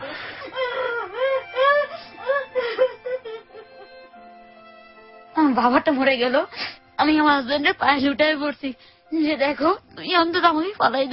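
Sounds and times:
woman crying in grief for her dead father: 0:00.0 - 0:04.2
speech: 0:05.6 - 0:11.1.

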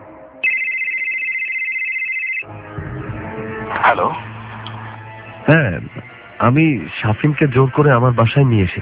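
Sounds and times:
high electronic telephone ring tone as a call is placed: 0:00.4 - 0:02.5
speech: 0:03.9 - 0:04.2, 0:06.4 - 0:08.8.

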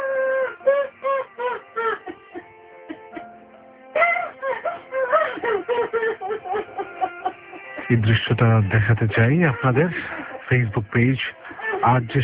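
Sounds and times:
woman sobbing and wailing for her father: 0:00.0 - 0:08.1, 0:09.0 - 0:10.6, 0:11.3 - 0:12.2
laughter: 0:04.0 - 0:12.2
speech: 0:07.9 - 0:12.2.

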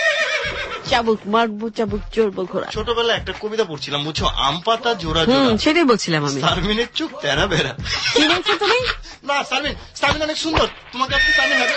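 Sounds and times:
horse neighing: 0:00.0 - 0:01.0, 0:11.2 - 0:11.7
speech: 0:00.9 - 0:11.7
laughter: 0:07.0 - 0:09.1.

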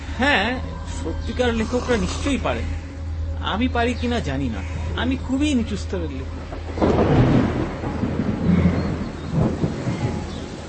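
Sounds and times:
speech: 0:00.2 - 0:02.8, 0:03.4 - 0:07.4
thunder rumbling: 0:06.2 - 0:10.6.

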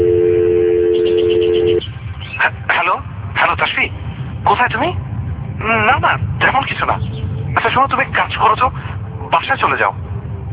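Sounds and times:
telephone line tone while dialling: 0:00.0 - 0:01.8
speech: 0:03.5 - 0:10.0.

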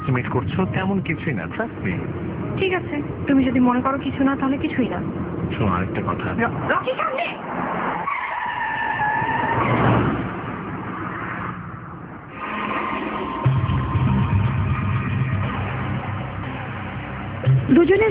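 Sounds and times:
car engine roaring: 0:00.0 - 0:18.1
speech: 0:00.1 - 0:07.8, 0:17.8 - 0:18.1
car tires screeching as it skids to a stop: 0:05.1 - 0:17.0.

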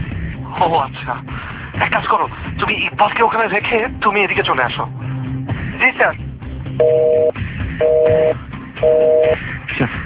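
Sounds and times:
speech: 0:00.6 - 0:05.1, 0:05.8 - 0:06.2, 0:06.8 - 0:09.0
telephone busy signal: 0:06.8 - 0:09.4.

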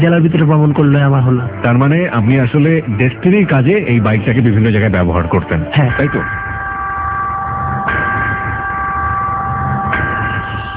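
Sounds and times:
speech: 0:00.0 - 0:06.4
radio station break chime before an advertisement break: 0:05.3 - 0:10.7.

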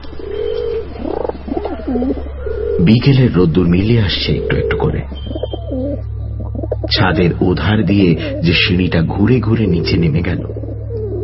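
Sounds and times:
low steady hum: 0:00.0 - 0:11.2
pigeon cooing by a house rooftop in late afternoon: 0:00.0 - 0:11.2
speech: 0:01.9 - 0:05.4, 0:06.9 - 0:10.6.

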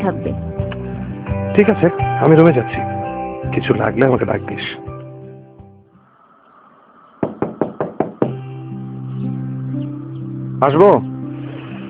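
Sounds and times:
speech: 0:00.0 - 0:00.6, 0:01.6 - 0:04.9, 0:10.6 - 0:11.1
soft music: 0:00.0 - 0:05.9, 0:07.8 - 0:11.8
knocks on a room door at home: 0:07.2 - 0:08.4.

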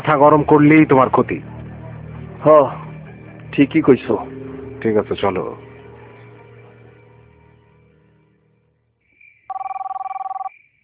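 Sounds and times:
speech: 0:00.0 - 0:01.6, 0:02.4 - 0:02.8, 0:03.5 - 0:05.6
telephone ringing late at night: 0:09.5 - 0:10.5.

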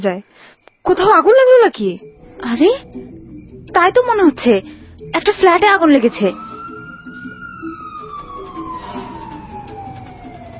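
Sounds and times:
speech: 0:00.0 - 0:06.4
low rumble of traffic: 0:02.1 - 0:10.5
fire engine siren wailing past a window: 0:02.2 - 0:10.5.

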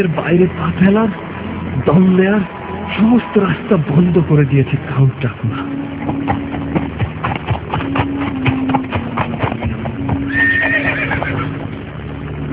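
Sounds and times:
speech: 0:00.0 - 0:06.5
horse-drawn carriage hooves clip-clopping: 0:05.5 - 0:11.8
horse whinnying: 0:10.1 - 0:11.6.

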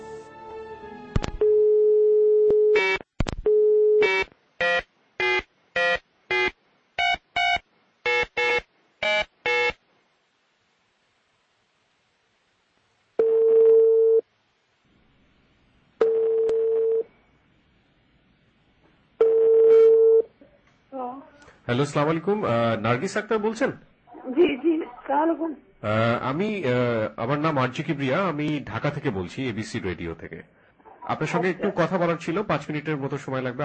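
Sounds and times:
telephone line tone on an outgoing call: 0:01.4 - 0:09.8, 0:13.2 - 0:14.2, 0:16.0 - 0:17.1, 0:19.2 - 0:20.3
speech: 0:21.7 - 0:23.9, 0:25.2 - 0:33.6.

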